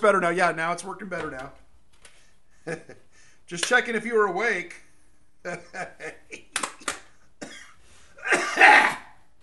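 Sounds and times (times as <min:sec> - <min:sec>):
speech: 0:00.0 - 0:01.6, 0:02.6 - 0:04.8, 0:05.4 - 0:06.4
person coughing: 0:07.4 - 0:09.2.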